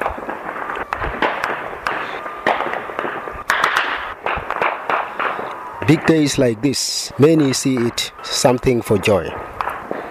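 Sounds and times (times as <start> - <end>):
celebratory gunfire: 0.0 - 6.2, 9.3 - 10.0
speech: 5.9 - 9.5.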